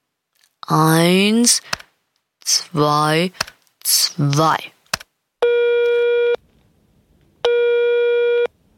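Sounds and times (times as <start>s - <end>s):
speech: 0.7s - 1.8s, 2.5s - 4.8s
telephone ringback tone during emergency call: 5.4s - 6.4s, 7.5s - 8.5s.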